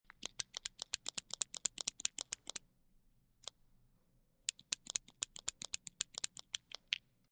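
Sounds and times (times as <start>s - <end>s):
mechanical pencil click: 0.1s - 2.6s, 4.5s - 7.0s.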